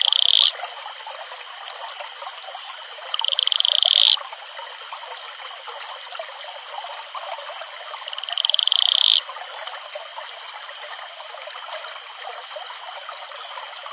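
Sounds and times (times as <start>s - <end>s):
Atelopus franciscus male advertisement calls: 0.0s - 0.8s, 3.1s - 4.2s, 8.0s - 9.2s
rushing water: 0.0s - 13.9s.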